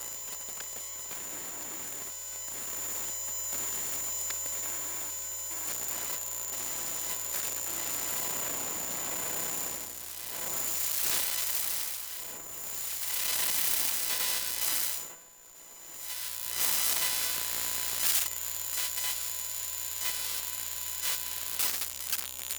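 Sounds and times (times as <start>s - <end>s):
electromagnetic computer load noise: 0.0s - 22.5s.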